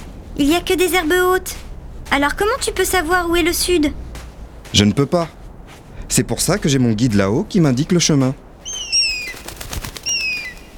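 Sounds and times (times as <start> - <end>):
speech: 0.4 - 4.0, 4.7 - 5.4, 6.1 - 8.4
eagle flapping its wings: 8.6 - 10.7
eagle giving high thin whistling cries: 8.6 - 10.7.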